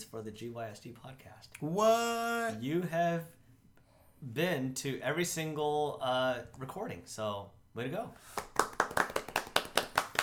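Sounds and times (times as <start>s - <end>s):
speech: 0.1s - 3.4s, 4.2s - 8.5s
light polite hand clapping: 8.3s - 10.2s.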